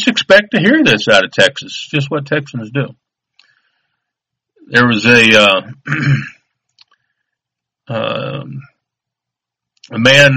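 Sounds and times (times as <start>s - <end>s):
speech: 0.0s - 3.0s, 4.7s - 6.4s, 7.9s - 8.7s, 9.9s - 10.3s
person clearing throat: 5.8s - 6.4s.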